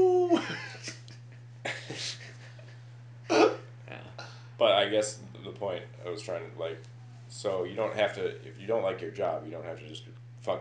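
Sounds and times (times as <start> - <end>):
person imitating a wolf howl: 0.0 - 0.5
steady low hum: 0.0 - 10.5
speech: 4.6 - 10.5.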